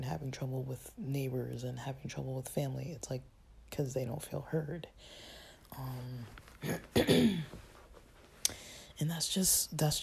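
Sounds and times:
speech: 0:00.1 - 0:07.6, 0:08.5 - 0:10.0
throat clearing: 0:06.6 - 0:07.6.

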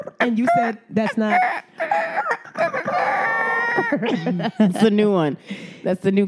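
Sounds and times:
voice imitating a rooster crow: 0:00.0 - 0:04.0
speech: 0:00.2 - 0:02.8, 0:03.9 - 0:06.2
laughter: 0:00.6 - 0:05.2.

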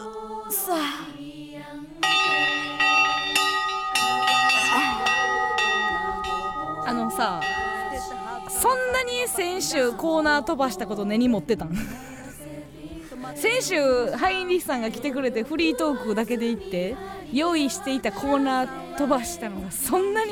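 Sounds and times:
bells ringing: 0:02.0 - 0:11.2
laughter: 0:04.6 - 0:06.1, 0:11.6 - 0:13.3
speech: 0:07.2 - 0:07.6, 0:08.6 - 0:12.0, 0:13.4 - 0:20.3.

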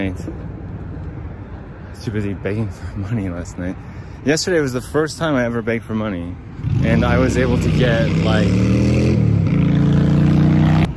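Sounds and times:
speech: 0:00.1 - 0:00.5, 0:02.0 - 0:09.0
loud motorcycles passing: 0:06.4 - 0:10.9.

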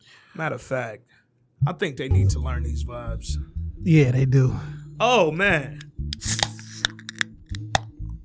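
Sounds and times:
speech: 0:00.4 - 0:06.4
beer can cracking open with a fizzy hiss: 0:06.1 - 0:07.9.

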